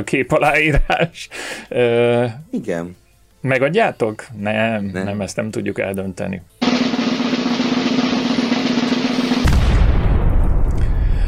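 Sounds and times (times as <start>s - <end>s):
speech: 0.0s - 6.6s
drumroll sound effect: 6.6s - 10.2s
booming fireworks explosions crackling: 6.6s - 10.5s.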